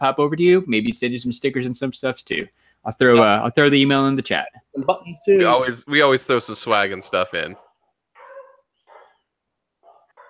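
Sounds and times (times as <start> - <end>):
speech: 0.0 - 7.6
dogs barking: 7.3 - 10.2.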